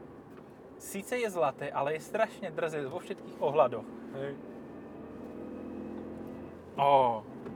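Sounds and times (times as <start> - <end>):
speech: 0.8 - 4.5, 6.8 - 7.3
gold-coloured car differential whine: 3.7 - 7.5.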